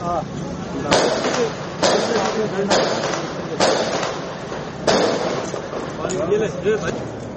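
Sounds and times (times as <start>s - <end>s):
voices: 0.0s - 7.3s
gunfire and explosions during an attack on a police headquarters in Karachi: 0.9s - 5.8s.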